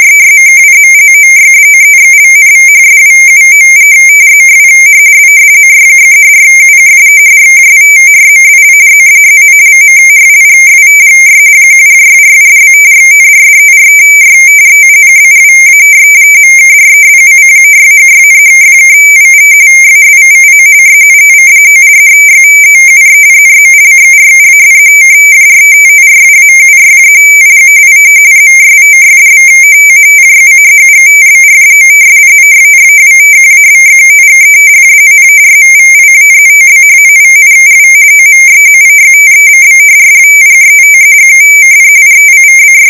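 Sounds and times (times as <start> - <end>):
AFSK radio teletype data tones at 22 ms per bit: 0.0 - 42.8.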